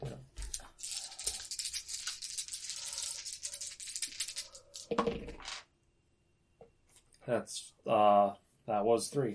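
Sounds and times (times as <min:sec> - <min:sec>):
plastic dice rattling and clattering: 0:00.4 - 0:05.7
speech: 0:07.3 - 0:09.3.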